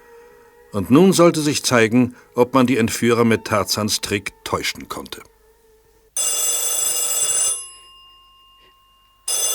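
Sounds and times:
speech: 0.7s - 5.4s
loud shrill metallic telephone bell ringing: 6.2s - 9.5s.

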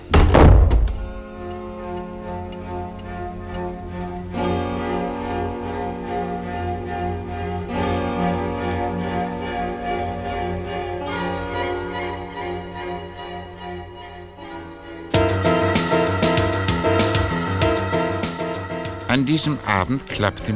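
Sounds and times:
door swinging shut with a heavy thunk: 0.0s - 1.3s
sustained music: 0.0s - 20.5s
speech: 19.4s - 20.5s.

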